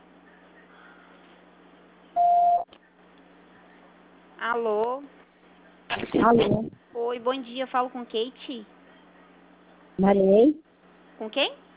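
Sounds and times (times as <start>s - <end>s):
voicemail beep tone: 2.2s - 2.7s
speech: 4.4s - 5.1s, 6.0s - 8.8s, 10.0s - 11.6s.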